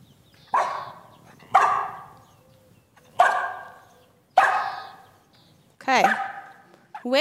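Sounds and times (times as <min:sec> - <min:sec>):
dog barking: 0:00.5 - 0:02.2, 0:03.2 - 0:05.0, 0:06.0 - 0:06.6.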